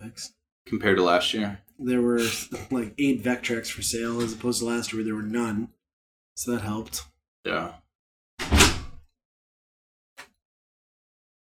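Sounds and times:
speech: 0.1 - 5.8, 6.4 - 7.8
bathroom door swinging shut: 4.0 - 4.7, 8.4 - 9.0.

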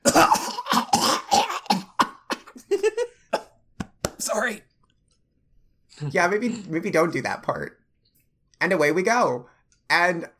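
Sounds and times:
coughing and sputtering from inhaling smoke: 0.0 - 3.6
speech: 6.1 - 7.8, 8.6 - 10.3.

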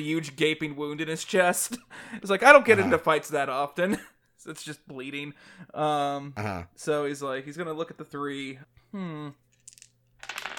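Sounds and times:
speech: 0.0 - 9.4
dice clattering on a hard tabletop: 9.5 - 10.5.

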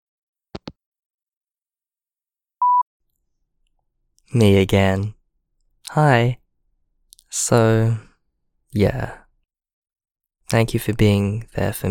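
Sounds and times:
telephone beep after hanging up before calling back: 2.6 - 2.8
speech: 4.3 - 5.2, 5.9 - 6.4, 7.3 - 8.1, 8.7 - 9.2, 10.5 - 11.8.

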